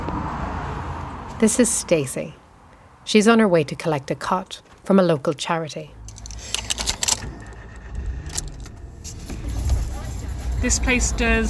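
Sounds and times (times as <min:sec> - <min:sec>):
car engine and road rumble inside a car pulling into a car park: 0:00.0 - 0:02.7, 0:05.8 - 0:11.4
speech: 0:01.4 - 0:02.4, 0:03.1 - 0:06.0, 0:10.6 - 0:11.4
light metallic jangles and clicks: 0:06.0 - 0:07.2.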